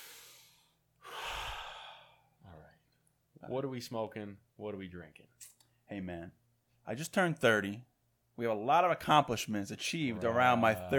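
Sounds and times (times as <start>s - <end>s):
deep breath in: 0.0s - 2.3s
speech: 3.4s - 10.9s.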